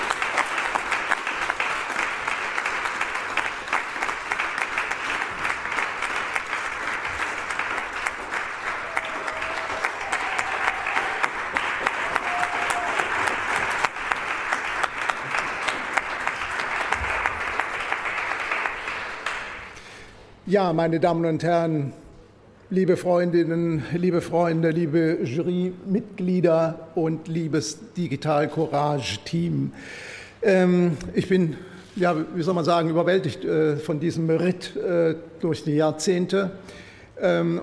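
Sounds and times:
sustained applause from a sizable audience at an awards event: 0:00.0 - 0:19.8
speech: 0:20.5 - 0:22.0, 0:22.7 - 0:37.6.

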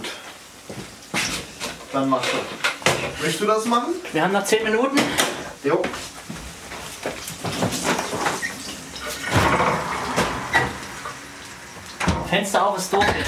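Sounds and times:
speech: 0:02.0 - 0:06.0, 0:12.3 - 0:13.2
clattering and sloshing of a pot being drained: 0:06.8 - 0:12.4
water pouring from a pot of boiled potatoes into a sink: 0:07.8 - 0:12.4.

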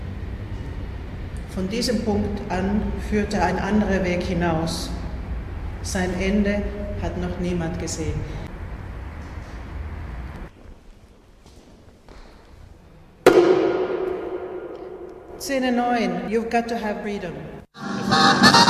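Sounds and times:
speech: 0:01.5 - 0:05.0, 0:05.9 - 0:08.5, 0:15.5 - 0:18.5
dense wash of sound under a domed university building: 0:13.3 - 0:15.8.

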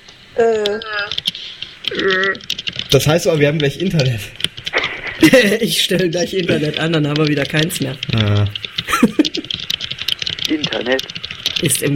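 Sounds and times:
speech: 0:00.4 - 0:01.2, 0:01.9 - 0:04.5, 0:05.2 - 0:09.1, 0:10.9 - 0:11.9
typing on a computer keyboard: 0:00.6 - 0:11.9
laughter: 0:04.7 - 0:06.9, 0:08.9 - 0:09.5.

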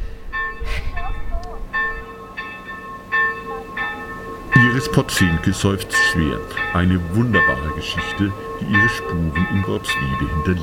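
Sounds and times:
low rumble: 0:00.0 - 0:02.2
church bells in Worpswede Germany rung wildly as a fire alarm: 0:00.0 - 0:10.6
speech: 0:04.7 - 0:10.6.

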